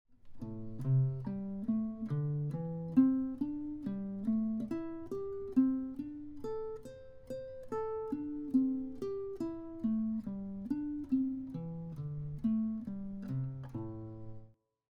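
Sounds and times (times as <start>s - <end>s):
guitar playing a string skipping pattern in the minor pentatonic scale: 0.3s - 14.5s.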